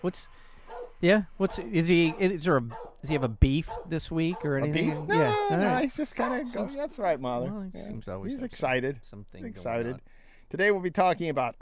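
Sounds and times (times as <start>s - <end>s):
speech: 0.0s - 11.6s
dog barking in the distance: 0.7s - 5.2s, 6.2s - 6.8s.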